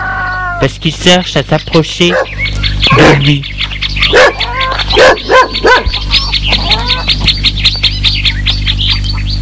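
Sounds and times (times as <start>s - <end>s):
birds chirping: 0.0s - 9.4s
speech: 0.6s - 3.6s, 4.9s - 6.0s
fierce dog barking on a farm: 2.1s - 2.4s, 4.1s - 6.0s.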